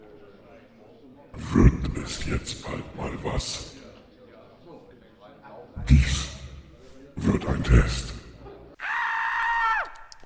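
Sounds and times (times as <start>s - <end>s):
speech: 2.2s - 3.8s, 5.9s - 6.3s, 7.2s - 8.1s
person screaming: 8.8s - 10.0s.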